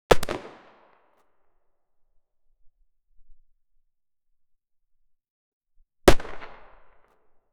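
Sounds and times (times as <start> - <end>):
single 9mm gunshot: 0.1 - 0.9, 6.1 - 7.2.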